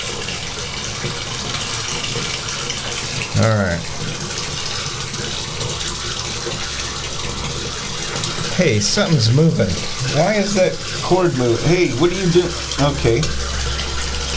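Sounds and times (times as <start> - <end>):
hot water running from a tap: 0.0 - 14.3
speech: 3.4 - 3.9, 8.6 - 13.5.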